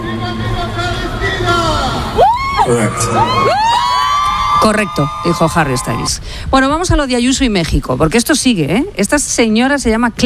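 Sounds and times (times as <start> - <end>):
large concert crowd roaring and cheering: 0.6 - 6.2
speech: 2.7 - 3.6, 4.6 - 10.2.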